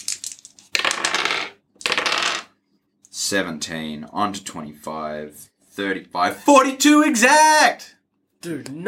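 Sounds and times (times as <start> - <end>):
dice rattling and tumbling across a hard surface: 0.0 - 2.5
speech: 3.3 - 8.8.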